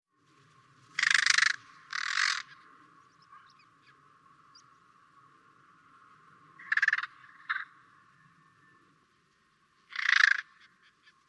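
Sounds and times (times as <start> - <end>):
carrion crow Corvus corone giving harsh hoarse caws: 1.0 - 2.6, 9.9 - 10.7.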